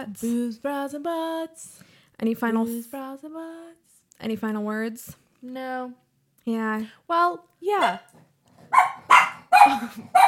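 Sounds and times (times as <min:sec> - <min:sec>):
speech: 0:00.0 - 0:08.9, 0:09.6 - 0:10.2
dog barking: 0:07.8 - 0:10.2.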